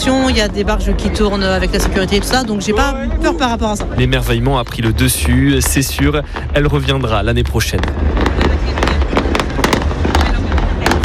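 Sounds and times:
speech: 0.0s - 8.4s
fireworks exploding with sharp bangs and crackles: 0.0s - 11.0s
murmur of voices: 0.0s - 11.0s
steady low rumble: 0.0s - 11.0s.

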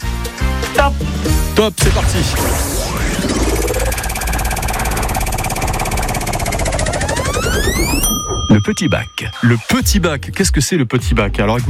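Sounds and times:
speech: 0.8s - 3.4s, 7.8s - 11.6s
sweeping tonal sounds: 3.2s - 9.7s
game show prize wheel spinning and clicking: 3.9s - 9.6s.

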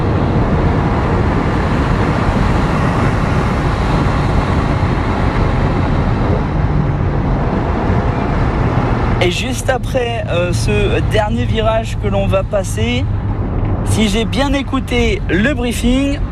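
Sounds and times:
car engine and road noise inside the cabin while accelerating along a straight: 0.0s - 16.3s
speech: 9.3s - 13.2s, 13.9s - 16.3s.

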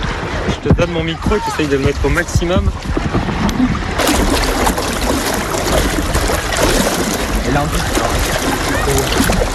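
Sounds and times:
water rushing along the hull of a moving sailboat: 0.0s - 9.5s
wind noise: 0.0s - 9.5s
speech: 0.6s - 3.9s, 7.6s - 8.3s, 8.9s - 9.5s.

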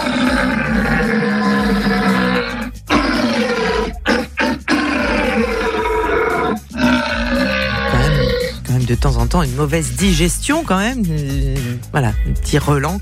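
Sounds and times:
red deer stag bellowing during the rut: 0.0s - 8.6s
speech: 9.0s - 13.0s.

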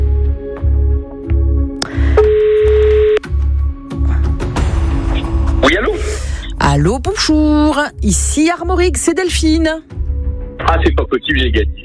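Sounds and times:
rhythmic pulsing low music: 0.0s - 11.8s
telephone ringing tone on an outgoing call: 2.2s - 3.2s
speech: 6.8s - 10.0s, 10.7s - 11.8s.

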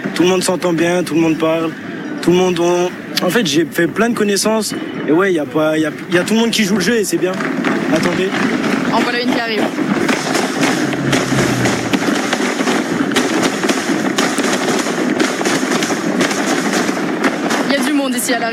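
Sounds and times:
speech: 0.2s - 10.1s, 18.3s - 18.5s
fireworks exploding during a race event: 6.1s - 18.5s.

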